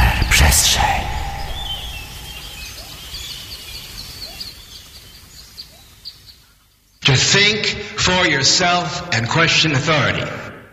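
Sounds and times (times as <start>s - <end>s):
soft steady outdoor hush: 0.0s - 5.3s
birds chirping and tweeting in a forest: 0.0s - 7.0s
speech: 7.1s - 10.4s.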